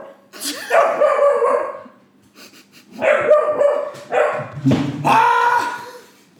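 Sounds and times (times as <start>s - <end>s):
dog barking: 0.0s - 2.0s, 3.0s - 4.6s.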